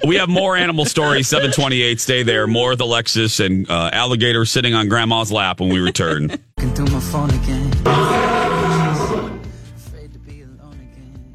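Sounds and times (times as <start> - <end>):
laughter: 0.0 - 2.0, 5.6 - 6.5
speech: 0.0 - 8.0
wild lion roaring: 7.9 - 9.6.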